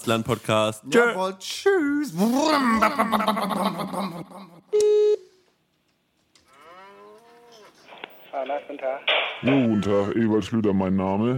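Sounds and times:
speech: 0.0 - 5.2, 8.3 - 11.3
laughter: 2.3 - 4.7
person imitating a cow mooing: 6.5 - 7.8.

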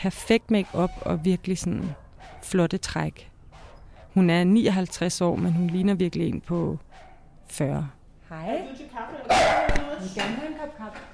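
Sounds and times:
speech: 0.0 - 3.3, 4.2 - 11.1
dachshund and Maltese barking in sharp yaps: 0.6 - 4.3.

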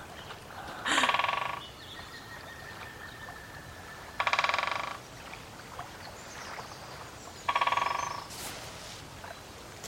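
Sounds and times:
woodpecker drumming on a tree: 0.8 - 1.7, 4.2 - 5.0, 7.5 - 8.3.

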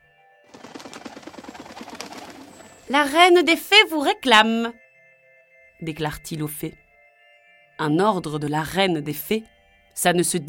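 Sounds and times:
blue bird calling in repeated chirping notes: 0.5 - 3.0
speech: 2.9 - 4.8, 5.8 - 6.8, 7.8 - 10.4.

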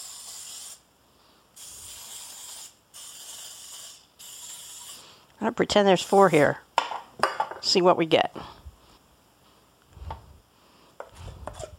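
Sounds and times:
aerosol cooking spray misting a muffin tin: 0.0 - 0.9, 1.5 - 6.7
speech: 5.4 - 6.6, 7.7 - 8.6.

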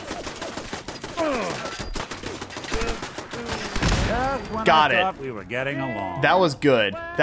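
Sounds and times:
.45-calibre submachine gun firing in a video game: 0.0 - 4.2
speech: 4.4 - 7.2.

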